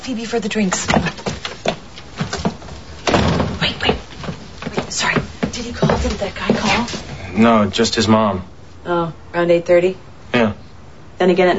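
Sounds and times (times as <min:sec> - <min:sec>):
speech: 0:00.0 - 0:01.3, 0:05.0 - 0:10.5, 0:11.2 - 0:11.5
soft knocks: 0:00.8 - 0:07.1
door pushed shut with a thud: 0:03.0 - 0:04.1.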